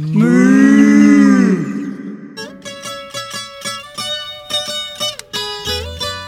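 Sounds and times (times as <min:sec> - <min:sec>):
cow mooing: 0:00.1 - 0:02.4.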